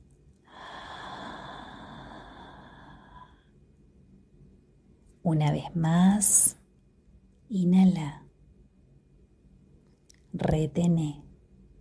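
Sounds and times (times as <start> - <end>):
long steady exhale during a guided breathing exercise: 0.5 - 3.4
speech: 5.3 - 6.6, 7.5 - 8.2, 10.5 - 11.2.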